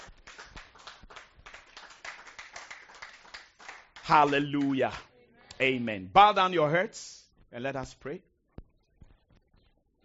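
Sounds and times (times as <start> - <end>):
congregation clapping hands: 0.0 - 5.1
speech: 4.1 - 8.3.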